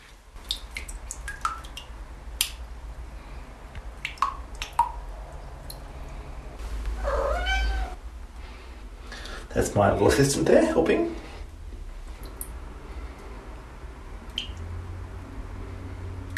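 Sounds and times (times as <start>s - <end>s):
water dripping from a wet rag into a saucepan in a shower: 0.0s - 6.2s, 12.1s - 12.6s, 14.2s - 15.0s, 16.2s - 16.3s
cat meowing: 7.0s - 8.0s
speech: 9.6s - 11.2s.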